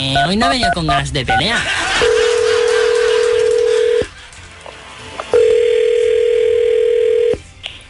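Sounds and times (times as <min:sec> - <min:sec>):
speech: 0:00.0 - 0:02.1
laughter: 0:01.4 - 0:04.6
telephone ringing tone: 0:03.3 - 0:04.1, 0:05.3 - 0:07.4.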